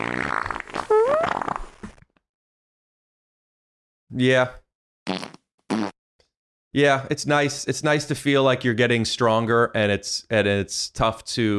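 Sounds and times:
buzzy fart sound effect: 0.0s - 2.0s, 5.1s - 6.0s
speech: 4.2s - 4.6s, 6.8s - 11.5s.

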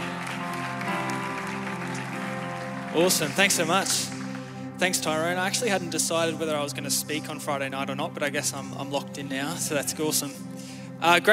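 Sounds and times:
crowd applauding: 0.0s - 7.2s
speech: 3.0s - 4.2s, 4.8s - 11.3s.

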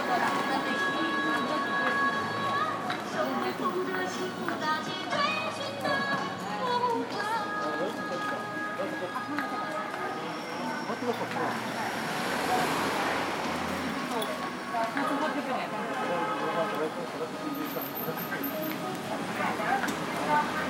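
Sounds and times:
passing traffic on a street in Shanghai: 0.0s - 20.6s
steady chatter on a street in Shanghai: 0.0s - 20.6s.

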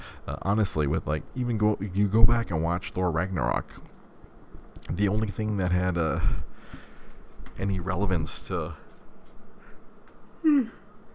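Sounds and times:
speech: 0.3s - 3.9s, 4.9s - 6.5s, 7.6s - 8.8s, 10.4s - 10.8s
person yawning with a voiced downward-sliding groan: 10.4s - 10.9s.

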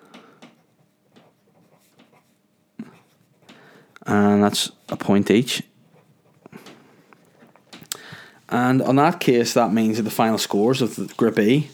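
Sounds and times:
writing by hand with scratchy strokes: 0.6s - 3.5s, 9.6s - 11.7s
speech: 4.0s - 5.7s, 8.6s - 11.7s.

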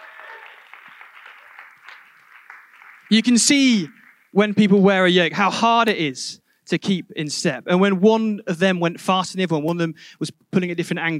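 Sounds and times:
crowd clapping: 0.0s - 4.8s
speech: 3.1s - 11.1s.

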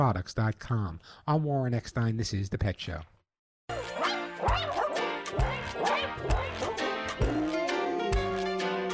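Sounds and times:
speech: 0.0s - 3.1s
dogs barking: 3.7s - 7.4s
bouncy holiday tune with steady beat and jingly backing: 3.7s - 8.9s.

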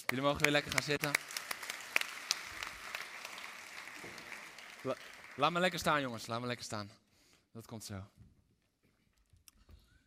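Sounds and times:
audience applause: 0.0s - 6.1s
speech: 0.1s - 1.5s, 4.8s - 7.0s, 7.6s - 8.2s.

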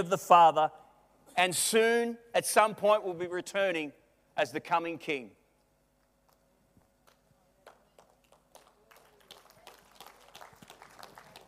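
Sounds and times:
speech: 0.0s - 0.8s, 1.4s - 5.4s
faint low hum: 0.0s - 11.4s
audience applause: 7.9s - 11.4s.

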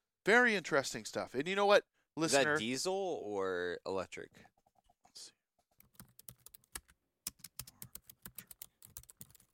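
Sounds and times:
speech: 0.2s - 4.5s, 5.2s - 5.4s
rapid typing on a computer keyboard: 5.8s - 9.5s.

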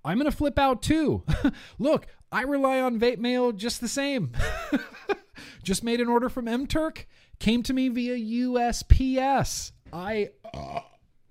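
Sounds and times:
speech: 0.0s - 10.9s
loud croaking burp: 10.4s - 11.2s.

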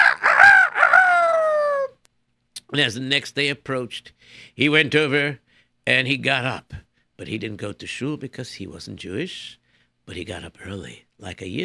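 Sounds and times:
rooster crowing: 0.0s - 1.9s
speech: 2.7s - 11.6s.

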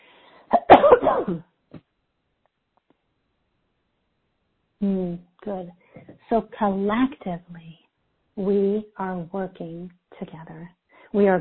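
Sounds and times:
person coughing: 0.5s - 1.4s
speech: 1.2s - 1.8s, 4.8s - 7.8s, 8.4s - 11.3s.

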